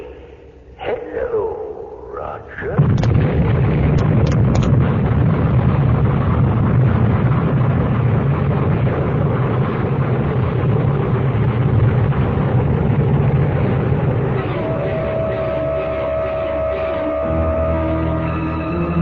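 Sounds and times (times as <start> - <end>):
sustained explosion of built-up gases: 0.8 - 19.0.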